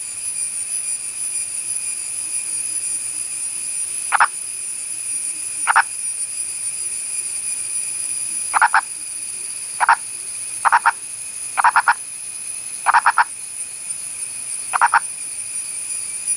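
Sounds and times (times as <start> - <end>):
purple frog of India clucking: 4.1 - 4.3, 5.7 - 5.9, 8.5 - 8.9, 9.8 - 10.0, 10.6 - 11.0, 11.6 - 12.0, 12.8 - 13.3, 14.7 - 15.0.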